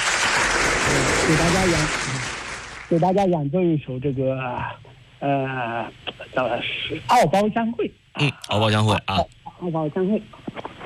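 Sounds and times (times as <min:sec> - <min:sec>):
group clapping: 0:00.0 - 0:03.1
speech: 0:01.3 - 0:02.1, 0:02.9 - 0:10.7.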